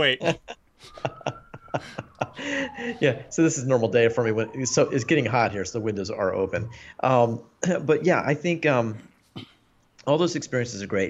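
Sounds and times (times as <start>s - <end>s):
speech: 0.0s - 1.1s, 1.8s - 11.0s
laughter: 0.0s - 3.3s
Czech emergency siren wailing: 0.0s - 7.6s.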